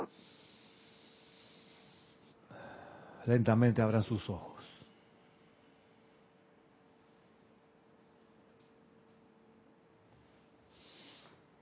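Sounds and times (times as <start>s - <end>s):
long deep breath drawn in: 0.0s - 3.2s, 10.7s - 11.4s
speech: 3.2s - 4.5s.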